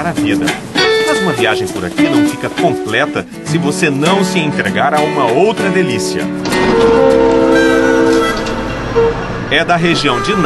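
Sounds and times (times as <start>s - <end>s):
passenger train riding on rails in California's Napa region: 0.0s - 3.3s, 6.4s - 10.4s
speech: 0.1s - 7.7s, 9.0s - 10.4s
sustained tonal hum: 6.4s - 9.5s.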